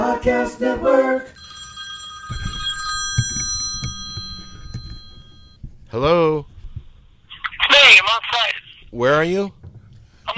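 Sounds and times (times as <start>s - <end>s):
speech: 0.2s - 1.4s, 6.0s - 6.5s, 7.9s - 9.6s
telephone bell ringing with a bright metallic trill: 1.4s - 5.6s
dull knocks and handling thumps: 2.3s - 5.6s.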